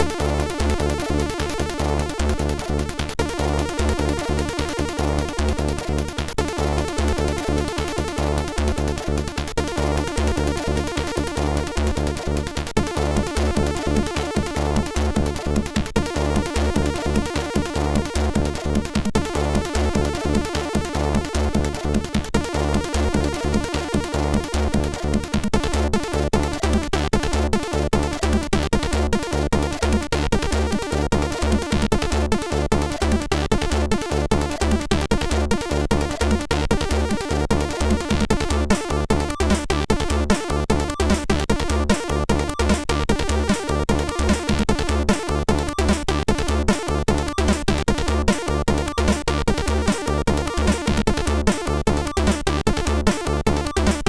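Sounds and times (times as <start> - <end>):
techno music on a MOS6581R3 SID chip: 0.0 - 54.0.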